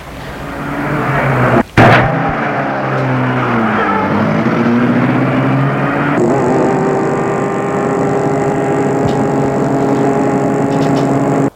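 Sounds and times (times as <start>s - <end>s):
small electric car driving past: 0.3s - 11.5s.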